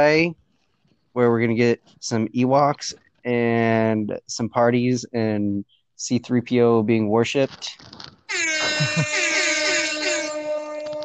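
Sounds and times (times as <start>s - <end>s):
speech: 0.0s - 0.4s, 1.2s - 9.4s
air horn blast: 8.3s - 11.0s.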